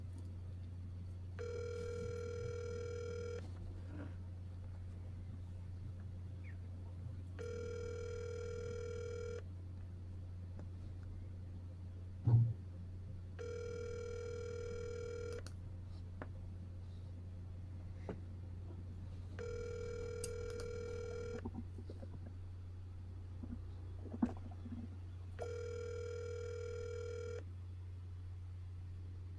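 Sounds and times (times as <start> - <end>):
constant low hum: 0.0 - 29.3
phone ringback tone through a speakerphone: 1.4 - 3.5, 7.4 - 9.4, 13.4 - 15.4, 19.4 - 21.4, 25.4 - 27.4.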